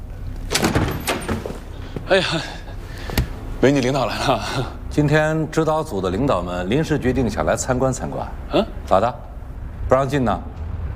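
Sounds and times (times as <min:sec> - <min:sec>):
low rumble: 0:00.0 - 0:10.9
door opening: 0:00.4 - 0:02.1
short rattling clunks of door: 0:00.4 - 0:02.1
speech: 0:02.1 - 0:02.6, 0:03.6 - 0:09.3, 0:09.9 - 0:10.5.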